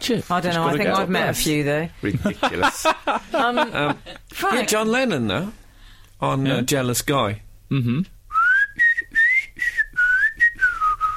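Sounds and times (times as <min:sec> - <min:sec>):
speech: 0:00.0 - 0:05.6, 0:06.2 - 0:08.2
laughter: 0:02.0 - 0:04.4
person whistling a smooth gliding melody: 0:08.3 - 0:11.1.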